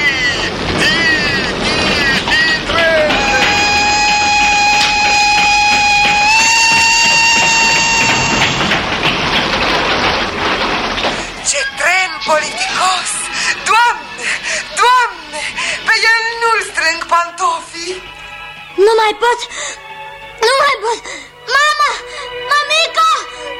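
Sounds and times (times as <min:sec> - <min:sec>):
train rumbling along: 0:00.0 - 0:23.5
train whistle blasting: 0:02.7 - 0:08.8.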